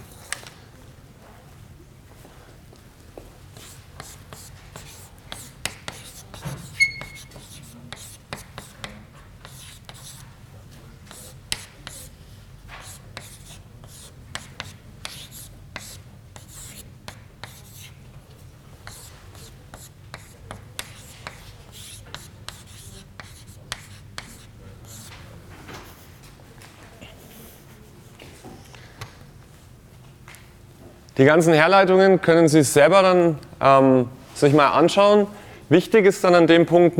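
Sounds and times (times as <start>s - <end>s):
pen or chalk strokes writing by hand during a lecture: 3.6s - 10.2s, 11.1s - 12.1s, 12.8s - 18.0s, 18.8s - 25.1s
speech: 31.2s - 36.9s.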